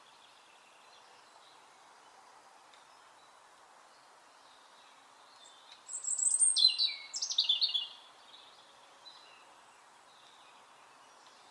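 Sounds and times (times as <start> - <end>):
European robin Erithacus rubecula thin warbling song: 0.0 - 11.4.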